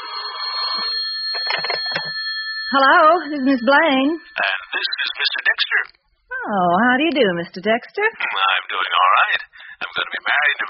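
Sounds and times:
telephone ringing with a shrill trilling bell: 0.0s - 5.4s
speech: 2.7s - 10.6s.

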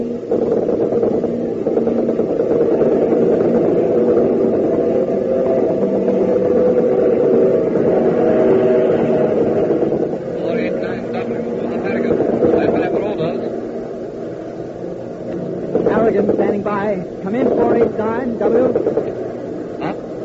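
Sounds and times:
Spitfire fighter plane propeller engines droning: 0.0s - 20.2s
crackly bursts: 0.0s - 20.2s
speech: 0.3s - 0.7s.

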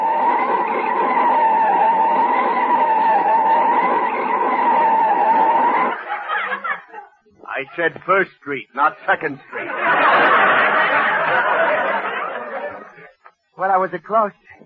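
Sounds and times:
car tires skidding and squealing as the car brakes hard: 0.0s - 6.0s
laughter: 0.0s - 8.1s, 9.1s - 13.2s
speech: 7.7s - 12.1s, 13.6s - 14.6s.

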